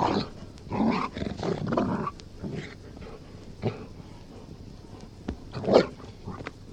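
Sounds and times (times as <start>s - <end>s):
Golden Retriever growling: 0.0s - 3.9s.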